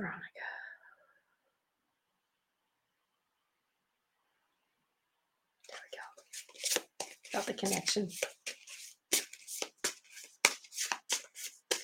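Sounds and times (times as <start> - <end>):
speech: 0.0 - 0.6, 7.4 - 8.4
deck of cards being shuffled: 5.7 - 11.8.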